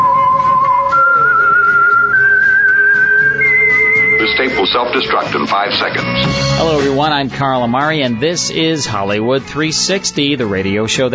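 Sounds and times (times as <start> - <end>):
person whistling a slow melody: 0.0 - 4.9
speech: 4.7 - 11.1.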